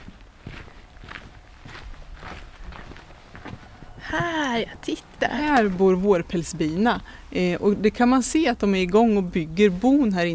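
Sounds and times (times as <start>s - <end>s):
soft footsteps walking outdoors with a light scuffing crunch: 0.0s - 6.6s
speech: 4.1s - 10.3s.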